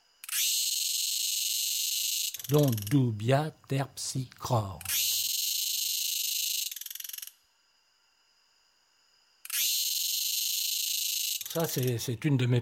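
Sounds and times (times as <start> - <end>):
quieter thin whine: 0.0 - 12.5
Thai cicada singing in harsh high-pitched buzzing bursts: 0.2 - 3.2, 4.8 - 7.4, 9.5 - 12.0
speech: 2.5 - 5.1, 11.6 - 12.5.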